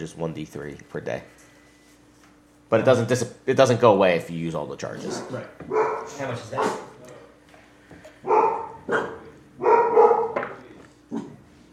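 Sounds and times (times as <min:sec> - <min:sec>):
speech: 0:00.0 - 0:01.5, 0:02.7 - 0:06.9
dogs barking: 0:04.9 - 0:07.1, 0:08.2 - 0:11.4.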